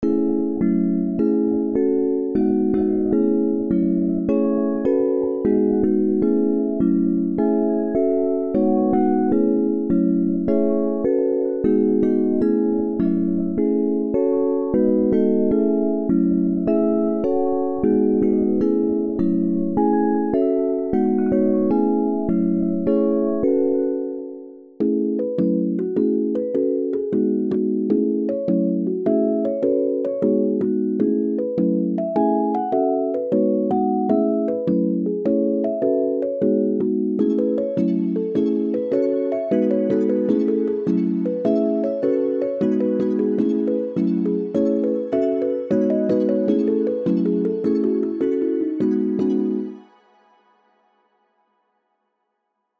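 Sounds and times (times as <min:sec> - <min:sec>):
instrumental melody loop: 0:00.0 - 0:49.9.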